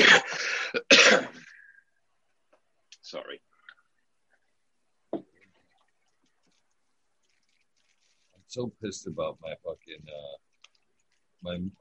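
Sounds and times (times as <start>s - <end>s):
harsh coughing: 0.0s - 1.5s
speech: 3.1s - 3.5s, 8.5s - 10.5s, 11.4s - 11.7s.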